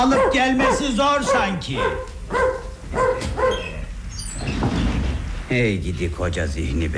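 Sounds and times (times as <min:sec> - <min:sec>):
speech: 0:00.0 - 0:03.7, 0:05.5 - 0:06.9
dog barking and whimpering: 0:00.0 - 0:03.9.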